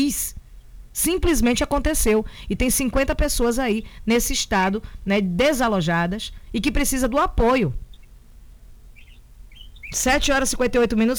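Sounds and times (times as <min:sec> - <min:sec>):
speech: 0:00.0 - 0:00.4, 0:01.0 - 0:07.8, 0:09.9 - 0:11.1
steady low rumble of noise: 0:00.0 - 0:11.1
small bird singing short high chirps: 0:07.5 - 0:11.1.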